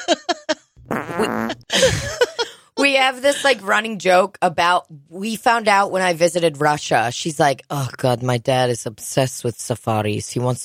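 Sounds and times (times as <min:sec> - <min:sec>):
fart pops and rasping buzzy fart blasts: 0:00.8 - 0:01.6
speech: 0:03.0 - 0:10.6.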